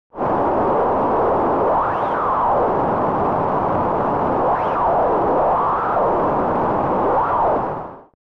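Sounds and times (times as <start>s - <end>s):
noise: 0.1s - 8.2s.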